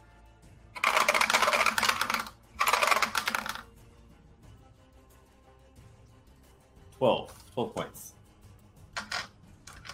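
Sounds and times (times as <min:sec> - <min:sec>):
handful of dice clattering and rattling: 0:00.8 - 0:03.7, 0:09.0 - 0:09.9
speech: 0:07.0 - 0:08.1.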